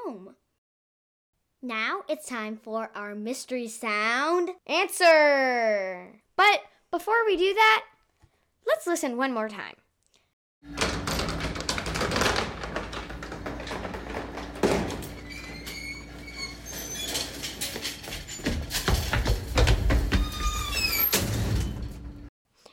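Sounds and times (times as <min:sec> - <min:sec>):
speech: 0:01.6 - 0:07.9, 0:08.6 - 0:09.8
old freight elevator clanking and rattling in an apartment building: 0:10.7 - 0:22.3
sharp metallic knocks and bangs: 0:10.7 - 0:22.3.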